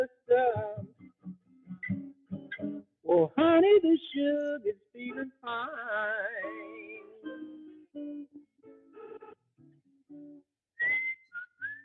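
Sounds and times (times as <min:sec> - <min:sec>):
speech: 0:03.2 - 0:06.8
person whistling a short bouncy tune: 0:06.4 - 0:07.4, 0:10.8 - 0:11.8.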